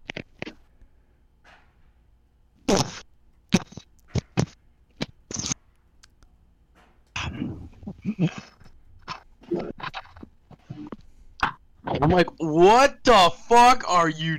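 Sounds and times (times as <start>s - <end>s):
person imitating wet slurping into a microphone: 2.7s - 5.6s, 7.2s - 12.4s
speech: 12.1s - 14.3s.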